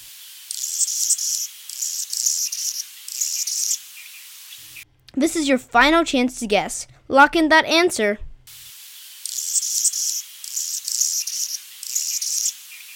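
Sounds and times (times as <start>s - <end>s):
hummingbird chirping: 0.5s - 4.8s, 9.2s - 12.9s
speech: 5.2s - 8.3s.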